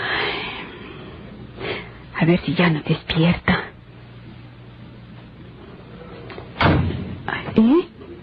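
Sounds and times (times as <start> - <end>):
low room noise: 0.0 - 8.2
speech: 2.2 - 3.7
patio door banging shut: 6.6 - 7.2.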